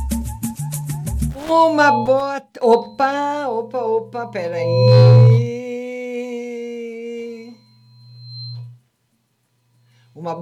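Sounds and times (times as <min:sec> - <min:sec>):
microphone feedback squeal during a live broadcast: 0:01.3 - 0:05.8, 0:07.1 - 0:08.8
low hum: 0:01.4 - 0:03.1, 0:04.1 - 0:05.6, 0:07.6 - 0:08.8
speech: 0:01.5 - 0:05.6, 0:10.2 - 0:10.4.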